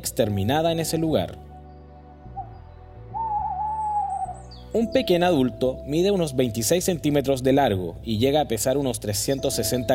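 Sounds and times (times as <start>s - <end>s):
speech: 0.0s - 1.5s, 4.7s - 9.9s
burrowing owl Athene cunicularia hooting: 2.3s - 4.6s.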